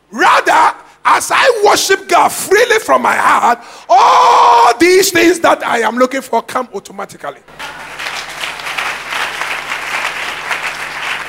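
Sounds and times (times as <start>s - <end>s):
speech: 1.2s - 7.6s
large crowd applauding during worship: 7.5s - 11.2s.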